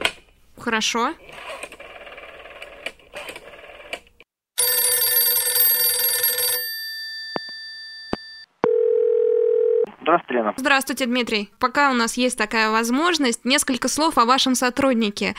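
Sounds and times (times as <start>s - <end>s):
speech: 0.6s - 1.7s, 10.1s - 15.3s
loud electronic telephone ringing on a conference line call: 4.6s - 6.8s, 8.6s - 9.9s.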